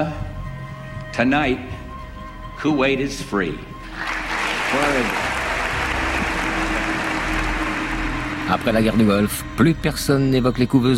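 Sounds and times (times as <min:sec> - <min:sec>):
speech: 0:01.2 - 0:01.8, 0:02.6 - 0:04.1, 0:08.5 - 0:10.9
audience applause at an American presidential address: 0:03.9 - 0:09.3.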